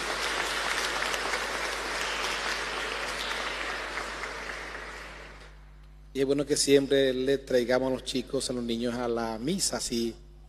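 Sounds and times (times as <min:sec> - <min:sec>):
church Mass audience applauding for children on Children's Day: 0:00.0 - 0:05.6
speech: 0:06.2 - 0:10.2.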